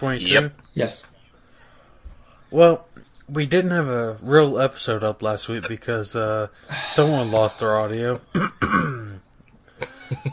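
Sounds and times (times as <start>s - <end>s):
speech: 0.0s - 1.2s, 2.5s - 9.0s, 10.1s - 10.3s
loud throaty cough with a groaning voiced tail: 8.3s - 9.2s.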